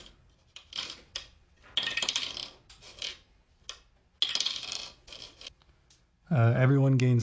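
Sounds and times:
dice clattering and rattling across a hard surface: 0.4s - 5.6s
speech: 6.3s - 7.2s.

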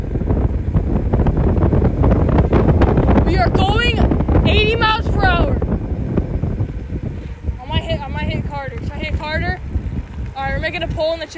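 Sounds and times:
wind buffeting the microphone while moving down a hill: 0.0s - 11.3s
speech: 10.7s - 11.3s.

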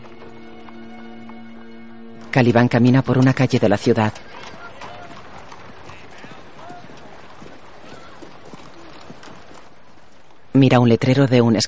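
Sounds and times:
horse hooves clip-clopping as a horse-drawn carriage pulls away from a house: 0.0s - 11.3s
speech: 2.2s - 4.6s, 10.6s - 11.6s.

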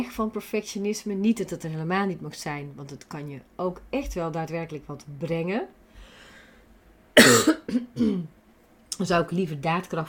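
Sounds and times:
speech: 0.0s - 5.8s, 7.2s - 8.4s, 9.0s - 10.0s
person coughing: 7.2s - 8.3s.

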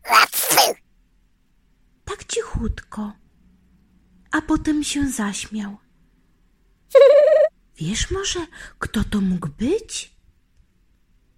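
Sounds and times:
soft sneeze in a shop: 0.0s - 0.8s
speech: 2.6s - 3.2s, 4.3s - 5.8s, 7.8s - 10.2s.

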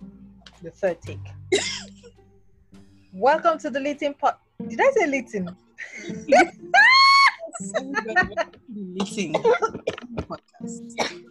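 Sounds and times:
speech: 0.6s - 1.9s, 3.2s - 6.6s, 7.6s - 11.2s
person coughing harshly: 1.6s - 2.1s, 9.0s - 10.4s, 11.0s - 11.2s
laughter: 5.4s - 8.6s, 9.2s - 10.4s.

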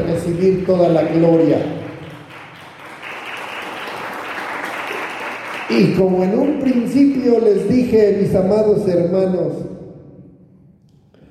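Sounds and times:
speech: 0.1s - 1.9s, 5.7s - 9.7s
audience applauding: 0.1s - 7.2s.

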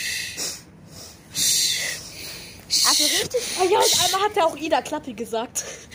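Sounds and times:
person imitating heavy breathing into a microphone: 0.0s - 4.3s
speech: 3.0s - 5.9s.

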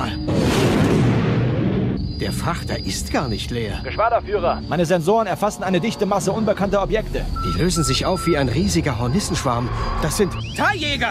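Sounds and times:
massive rumbling spaceship explosion boom: 0.3s - 2.0s
speech: 2.3s - 11.0s.

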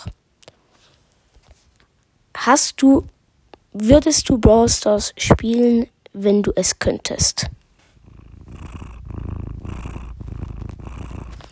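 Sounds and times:
speech: 2.4s - 7.6s
cat purring: 7.4s - 11.5s.

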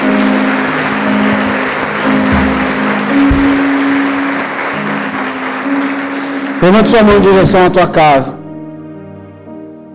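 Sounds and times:
audience applauding: 0.0s - 8.1s
speech: 6.6s - 8.4s.

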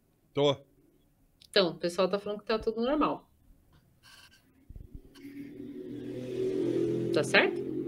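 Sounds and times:
speech: 0.4s - 0.7s, 1.5s - 3.3s, 7.2s - 7.6s
brief low thumps: 4.6s - 7.8s
motorcycle engine revving outside: 4.8s - 7.8s.

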